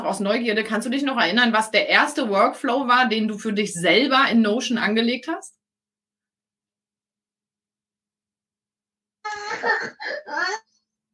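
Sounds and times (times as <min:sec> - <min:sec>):
speech: 0:00.1 - 0:05.6
young child crying and whimpering: 0:09.2 - 0:10.8.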